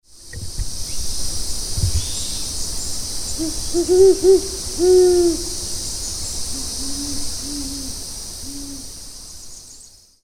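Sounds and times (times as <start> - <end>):
adult owl, the largest owl of the continent: 3.4 - 5.8, 6.4 - 8.9.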